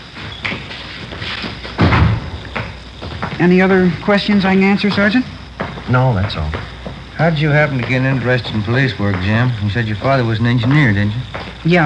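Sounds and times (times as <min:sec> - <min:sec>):
light knocks and rattles on a door: 0:01.5 - 0:11.7
door slamming: 0:01.7 - 0:03.2
speech: 0:03.4 - 0:11.8.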